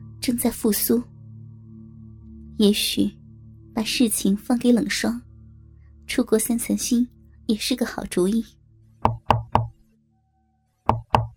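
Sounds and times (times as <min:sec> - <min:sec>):
speech: 0:00.2 - 0:01.1, 0:02.6 - 0:03.2, 0:03.8 - 0:05.2, 0:06.1 - 0:08.6
sharp knocking on a door: 0:09.0 - 0:09.8, 0:10.9 - 0:11.3.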